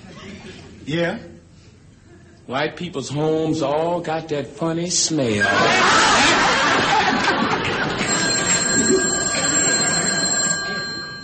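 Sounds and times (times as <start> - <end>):
speech: 0.8 - 1.4, 2.5 - 7.2
laughter: 5.4 - 11.0
telephone ringing with a bright metallic tone: 6.6 - 11.2.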